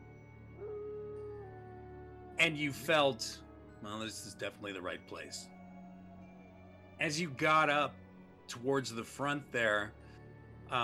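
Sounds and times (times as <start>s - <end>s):
wolf howl: 0.0s - 7.8s
speech: 2.4s - 5.6s, 7.0s - 10.0s.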